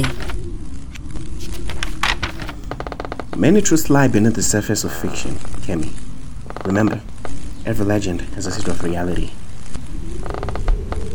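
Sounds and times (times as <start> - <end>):
speech: 0.0 - 0.2, 3.4 - 6.0, 6.6 - 9.4
old timbers creaking in an attic: 0.0 - 11.1.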